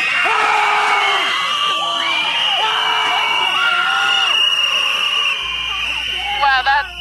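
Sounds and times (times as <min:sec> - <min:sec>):
crowd of protesters shrieking and screaming: 0:00.0 - 0:06.9.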